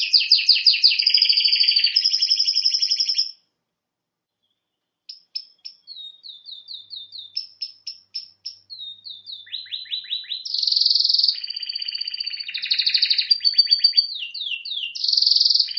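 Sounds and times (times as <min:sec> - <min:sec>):
canary singing with chips and buzzing trill: 0:00.0 - 0:03.4, 0:04.4 - 0:15.7.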